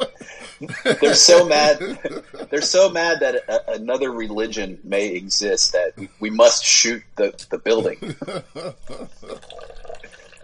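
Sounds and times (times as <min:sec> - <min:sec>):
laughter: 0:00.0 - 0:04.5, 0:05.9 - 0:06.2, 0:07.3 - 0:09.5
speech: 0:00.6 - 0:09.6
Dr. Pepper being poured into a glass of whiskey: 0:09.3 - 0:10.4.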